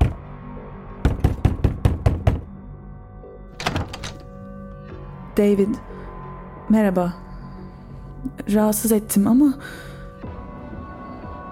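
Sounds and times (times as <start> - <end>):
knocking on a front door: 0.0 - 0.2, 1.0 - 2.5
speech: 5.4 - 5.9, 6.7 - 7.2, 8.3 - 9.9.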